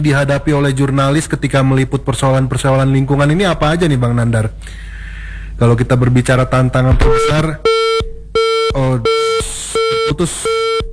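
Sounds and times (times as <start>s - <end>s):
speech: 0.0s - 4.9s, 5.6s - 7.8s, 8.7s - 9.4s, 10.0s - 10.6s
disconnect beeps from a dropped phone call: 7.2s - 10.9s.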